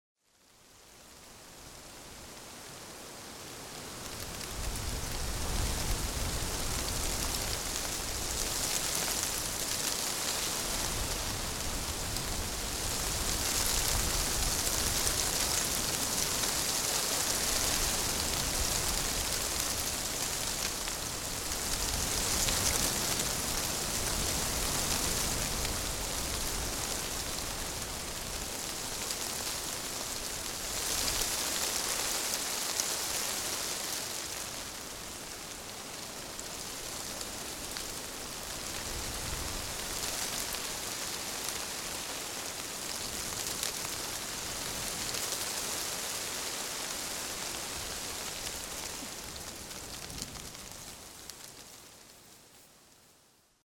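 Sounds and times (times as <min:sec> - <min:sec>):
wind in aspen leaves: 0:00.2 - 0:53.6.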